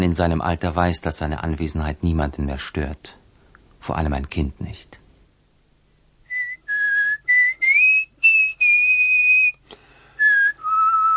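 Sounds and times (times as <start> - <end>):
speech: 0.1 - 3.2, 3.8 - 5.0
person whistling a melody: 6.3 - 11.1.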